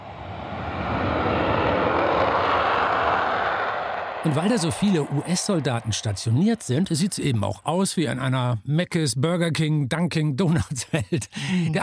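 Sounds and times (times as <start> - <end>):
loud continuous jet roar: 0.0 - 7.7
speech: 4.2 - 11.8
laughter: 4.3 - 7.6, 10.3 - 11.8.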